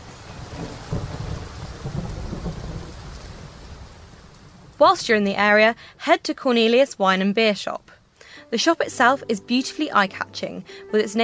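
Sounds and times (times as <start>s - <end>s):
low rolling thunder: 0.0s - 5.5s
steady rain: 0.0s - 9.2s
speech: 4.8s - 11.2s.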